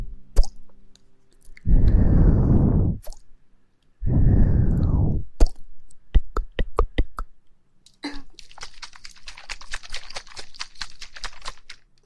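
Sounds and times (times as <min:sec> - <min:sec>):
kissing sounds at the ear: 0:00.3 - 0:00.6, 0:05.4 - 0:07.3
breathy blowing at the ear: 0:01.6 - 0:03.1, 0:04.0 - 0:05.3.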